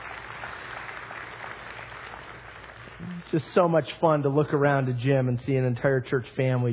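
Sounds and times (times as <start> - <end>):
large crowd applauding: 0.0 - 3.4
speech: 3.2 - 6.7.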